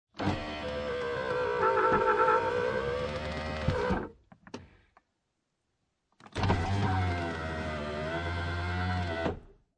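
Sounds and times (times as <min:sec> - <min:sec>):
1996 Acura Integra automatic car window going up and down: 0:00.2 - 0:04.1, 0:06.4 - 0:09.4.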